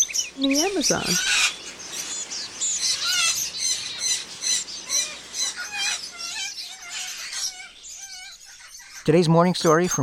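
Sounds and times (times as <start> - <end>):
caged pet birds at home chirping and squawking: 0.0 - 10.0
speech: 0.4 - 1.4, 9.0 - 10.0.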